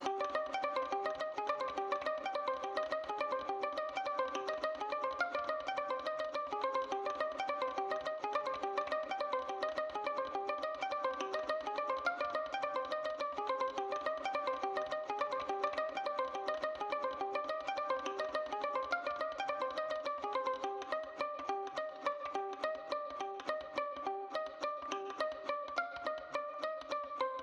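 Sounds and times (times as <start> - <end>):
pizzicato violins trap melody loop in C minor: 0.0 - 27.4.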